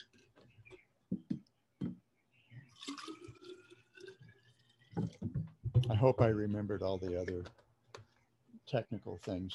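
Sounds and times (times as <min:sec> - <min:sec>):
water pouring into a water bottle: 0:02.6 - 0:05.4
speech: 0:05.9 - 0:07.6, 0:08.7 - 0:09.5.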